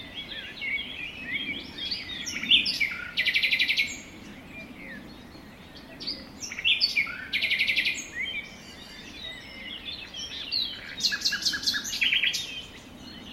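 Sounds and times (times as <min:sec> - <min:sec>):
forest birds chirping and whistling: 0:00.0 - 0:13.3.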